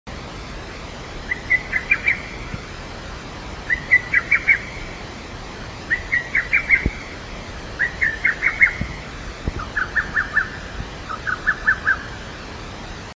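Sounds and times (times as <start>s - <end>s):
lesser cuckoo calling while flying at dawn on the hill behind a shrine office: 1.3s - 2.4s, 3.7s - 4.9s, 5.9s - 12.2s.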